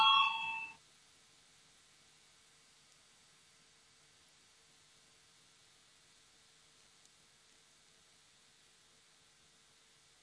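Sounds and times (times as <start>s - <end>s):
bell ringing to call a vote: 0.0s - 0.8s.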